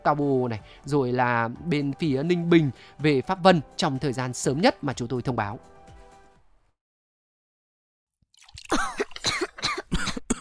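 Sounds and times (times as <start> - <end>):
speech: 0.0 - 5.7
harsh wet coughing with a throaty rasp: 8.7 - 10.4.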